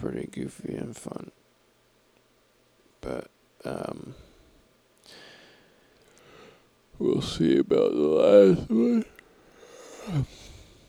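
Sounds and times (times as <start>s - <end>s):
speech: 0.1s - 1.5s, 3.0s - 4.2s, 7.0s - 9.2s, 10.1s - 10.5s
person yawning into a microphone while lying on a bed: 8.3s - 9.2s, 9.8s - 10.5s.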